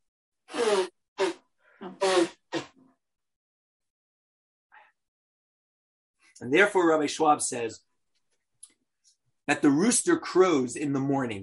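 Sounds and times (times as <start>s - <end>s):
person sneezing: 0.5s - 1.4s, 2.0s - 2.8s
speech: 6.4s - 7.9s, 9.5s - 11.4s.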